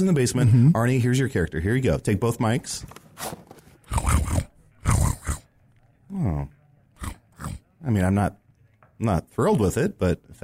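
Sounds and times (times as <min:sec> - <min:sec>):
speech: 0:00.0 - 0:03.4, 0:07.8 - 0:08.4, 0:09.0 - 0:10.4
person imitating a tiger snoring: 0:03.9 - 0:05.5, 0:06.1 - 0:07.6
throaty voiced growl: 0:03.9 - 0:05.5, 0:06.1 - 0:07.6.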